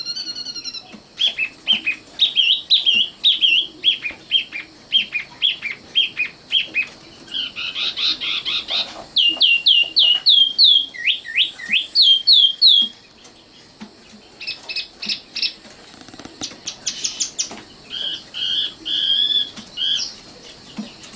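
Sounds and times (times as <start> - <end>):
Oriental magpie-robin singing: 0.0 - 12.9, 16.6 - 20.2.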